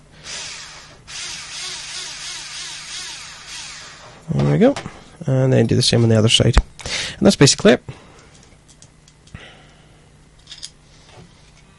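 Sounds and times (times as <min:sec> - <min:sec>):
electric drill whirring while driving in a screw: 0:00.2 - 0:04.2
speech: 0:04.3 - 0:08.0.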